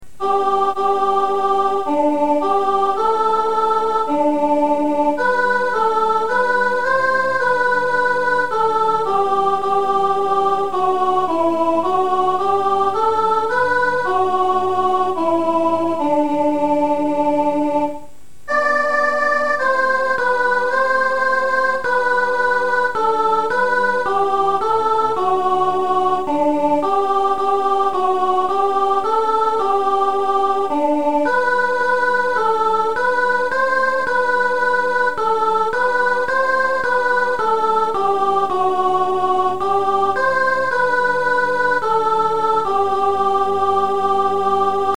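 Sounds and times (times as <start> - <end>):
soprano singing a Christmas carol: 0.2 - 44.9.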